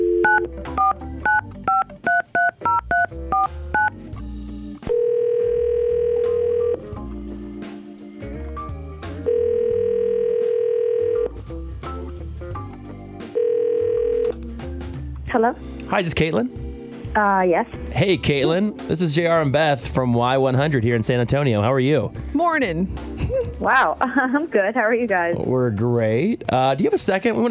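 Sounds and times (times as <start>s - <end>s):
telephone keypad beeps: 0.0s - 3.9s
telephone ringing tones: 0.0s - 3.9s, 4.9s - 6.8s, 9.3s - 11.3s, 13.3s - 14.3s
speech: 15.3s - 16.6s, 17.2s - 23.0s, 23.6s - 27.4s.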